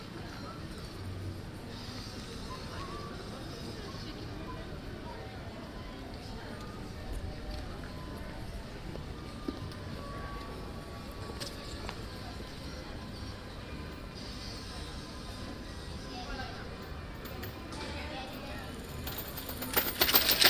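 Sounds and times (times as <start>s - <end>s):
outdoor murmur of voices around a big church in a city square: 0.0s - 20.4s
traffic in a city square: 0.0s - 20.4s.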